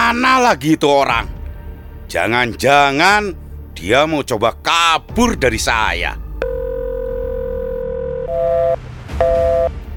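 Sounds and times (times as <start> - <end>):
speech: 0.1 - 1.4, 2.1 - 6.2
telephone ringback tone on an unanswered call: 6.4 - 9.7.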